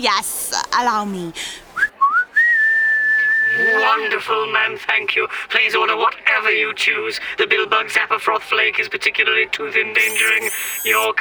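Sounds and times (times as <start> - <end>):
speech: 0.0 - 1.6, 3.5 - 11.2
person whistling rising notes: 1.8 - 3.7, 10.0 - 11.1.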